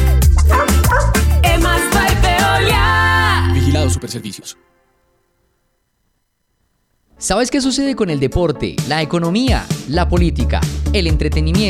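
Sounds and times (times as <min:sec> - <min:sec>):
busy musical backing: 0:00.0 - 0:05.1, 0:07.1 - 0:11.6
dog barking: 0:00.4 - 0:01.3
speech: 0:04.0 - 0:04.7, 0:07.2 - 0:11.6.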